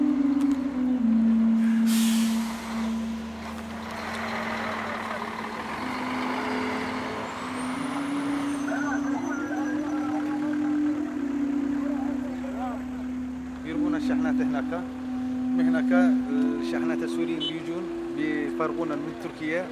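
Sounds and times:
heavy trucks rumbling at border crossing: 0.0s - 19.6s
truck air brakes hissing: 1.6s - 3.6s
faint voices: 4.2s - 7.2s, 7.8s - 19.6s.

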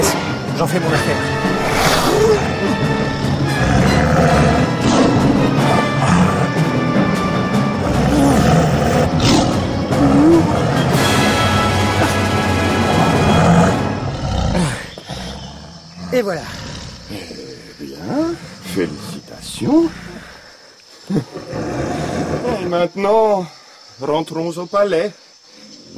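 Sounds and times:
speech: 0.6s - 1.5s, 2.2s - 4.4s, 16.1s - 17.2s, 18.1s - 19.0s, 19.6s - 20.0s, 22.7s - 25.2s
tiger roaring: 1.4s - 20.4s, 21.3s - 22.7s.

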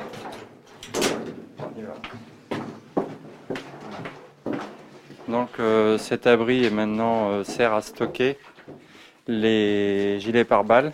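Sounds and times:
armored shelter door being unlocked with a key and opened: 0.0s - 1.4s
speech: 5.3s - 8.5s, 9.3s - 10.9s.

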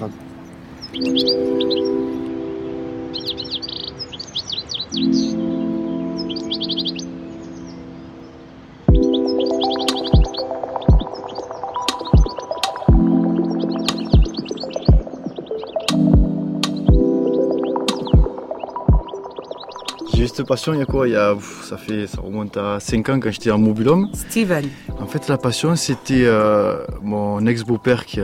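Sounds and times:
speech: 0.0s - 2.2s, 5.0s - 5.6s, 20.4s - 28.2s
birds chirping and twittering: 0.0s - 28.2s
sharp rhythmic knocks: 8.9s - 21.1s.

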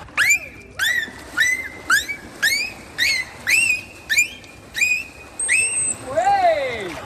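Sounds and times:
dolphin signature whistle: 0.0s - 6.6s.

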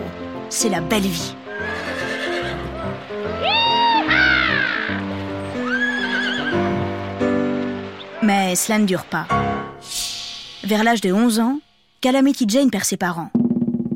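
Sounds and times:
low steady musical backdrop: 0.0s - 13.9s
speech: 0.5s - 1.4s, 8.5s - 9.5s, 10.7s - 13.4s
horse whinnying and neighing: 1.5s - 6.8s.

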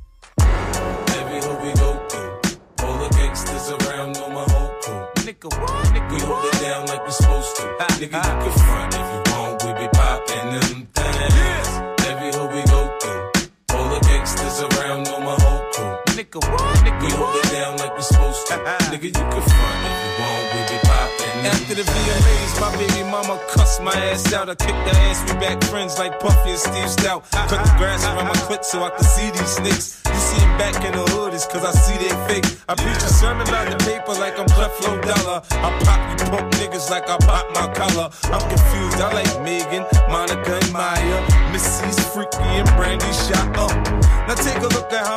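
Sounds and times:
hip-hop beat: 0.0s - 45.1s
punchy kick drums: 0.4s - 3.5s, 4.5s - 4.8s, 5.8s - 6.1s, 7.2s - 7.5s, 8.6s - 8.9s, 10.0s - 10.2s, 11.3s - 11.7s, 12.7s - 13.0s, 14.0s - 14.3s, 15.4s - 15.7s, 16.8s - 17.0s, 18.1s - 18.4s, 19.5s - 19.8s, 20.8s - 23.0s, 23.6s - 24.0s, 24.9s - 25.4s, 26.3s - 26.6s, 27.7s - 28.0s, 29.0s - 29.4s, 30.3s - 30.8s, 31.8s - 32.1s, 33.0s - 33.9s, 34.5s - 36.6s, 37.2s - 39.1s, 40.0s - 40.3s, 41.3s - 41.8s, 42.5s - 44.4s
speech: 7.1s - 8.9s, 16.3s - 45.1s.

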